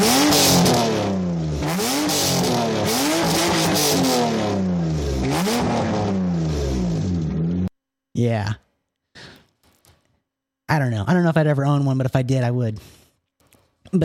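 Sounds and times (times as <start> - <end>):
straight-piped Subaru SVX flat-six exhaust revving: 0.0 - 7.7
speech: 8.2 - 8.6, 10.7 - 13.0.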